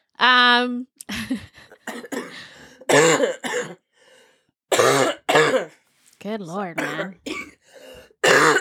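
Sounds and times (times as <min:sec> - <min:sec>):
speech: 0:00.2 - 0:03.8, 0:04.7 - 0:07.4
person clearing throat: 0:01.8 - 0:03.8, 0:04.7 - 0:05.7, 0:06.8 - 0:07.6, 0:08.2 - 0:08.5
person coughing: 0:01.8 - 0:03.8, 0:04.7 - 0:05.8, 0:06.8 - 0:08.5.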